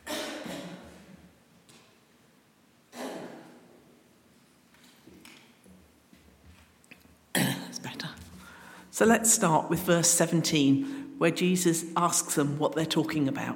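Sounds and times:
person coughing in harsh bursts: 0.0s - 1.0s, 2.9s - 3.7s, 7.3s - 7.8s
speech: 9.0s - 13.5s.

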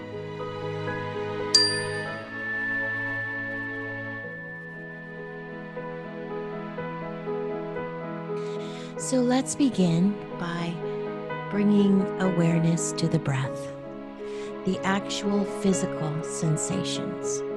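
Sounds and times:
soft steady tonal drone: 0.5s - 8.2s
meditation chime ringing: 1.6s - 6.7s
speech: 9.1s - 10.9s, 11.5s - 13.8s, 14.6s - 17.5s.

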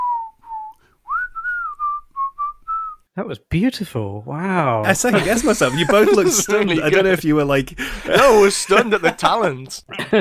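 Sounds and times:
person whistling a catchy film song tune: 0.0s - 3.0s
speech: 3.2s - 10.2s
laughter: 4.9s - 10.2s.

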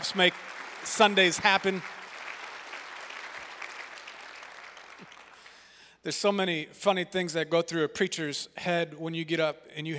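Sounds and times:
audience applause: 0.0s - 5.6s
speech: 0.1s - 2.0s, 6.0s - 9.9s.

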